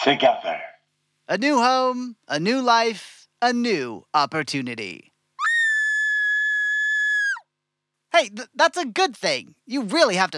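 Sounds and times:
speech: 0:00.0 - 0:00.7, 0:01.3 - 0:05.1, 0:08.2 - 0:10.3
piercing high-pitched scream: 0:05.4 - 0:07.5.

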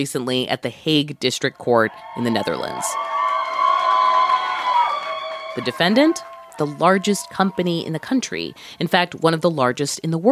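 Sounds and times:
speech: 0:00.0 - 0:03.1, 0:05.6 - 0:10.2
crowd cheering and whooping in a courthouse hallway: 0:01.8 - 0:08.4.

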